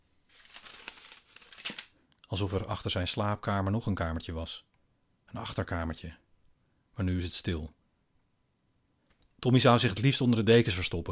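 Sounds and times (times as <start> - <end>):
crisp paper rustling and crinkling: 0.0 - 2.0
speech: 1.7 - 4.7, 5.3 - 6.2, 7.0 - 7.8, 9.4 - 11.0.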